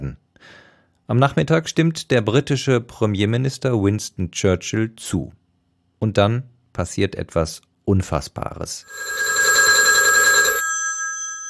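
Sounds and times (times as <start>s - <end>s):
speech: 0.1s - 5.4s, 6.0s - 9.2s
electric telephone bell ringing for a phone call: 8.9s - 11.4s.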